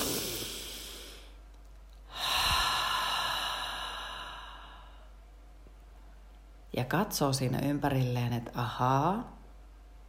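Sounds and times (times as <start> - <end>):
slow deep breathing: 0.0 - 5.3
speech: 6.8 - 9.4.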